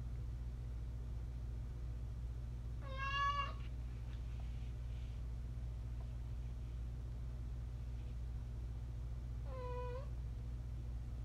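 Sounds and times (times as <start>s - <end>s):
constant low droning hum: 0.0s - 11.2s
domestic cat meowing: 2.8s - 3.6s, 9.5s - 10.1s.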